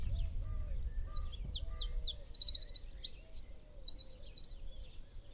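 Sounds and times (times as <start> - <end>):
Eurasian wren Troglodytes troglodytes song: 0.2 - 5.0.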